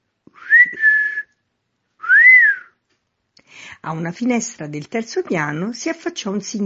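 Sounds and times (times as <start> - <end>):
man whistling to call someone at night before a house front door: 0.3 - 1.4, 2.0 - 2.8
speech: 3.7 - 6.6.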